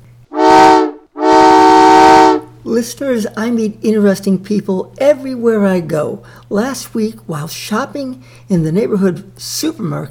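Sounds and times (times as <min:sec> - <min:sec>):
oncoming train whistle blasts: 0:00.3 - 0:02.5
speech: 0:02.7 - 0:10.0.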